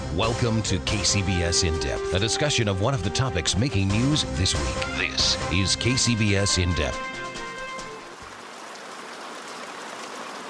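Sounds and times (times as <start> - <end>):
speech: 0.2 - 7.2
heavy rain pouring: 5.8 - 10.4.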